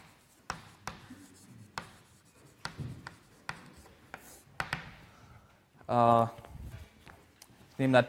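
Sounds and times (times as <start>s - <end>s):
hand drawing scratching strokes of a mathematical sketch: 0.0s - 4.8s.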